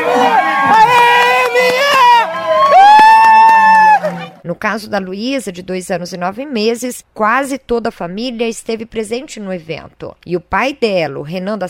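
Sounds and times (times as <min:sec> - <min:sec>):
outdoor crowd cheering and shouting at a children's running race: 0:00.0 - 0:04.4
speech: 0:04.6 - 0:11.6.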